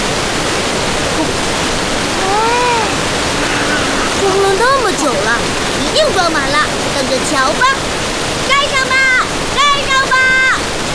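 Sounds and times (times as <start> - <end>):
roaring waterfall crashing over rocks: 0.0 - 10.9
wavering vocal exclamation: 1.1 - 6.8
speech: 5.0 - 7.9.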